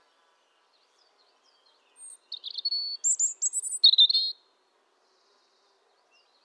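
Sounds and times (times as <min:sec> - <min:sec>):
European robin Erithacus rubecula singing: 0:02.0 - 0:04.4.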